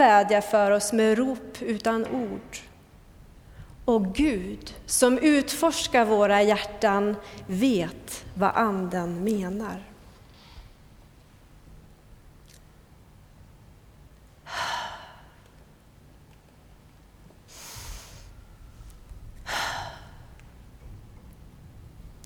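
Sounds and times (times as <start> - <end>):
speech: 0.0 - 2.7, 3.9 - 9.9
slow human breathing: 3.4 - 3.8, 14.5 - 15.6, 17.5 - 20.6.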